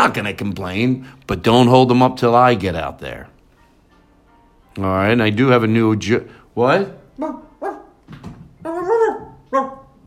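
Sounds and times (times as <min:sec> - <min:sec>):
speech: 0:00.0 - 0:03.3, 0:04.8 - 0:09.8
dog barking: 0:07.2 - 0:08.0, 0:08.7 - 0:10.0.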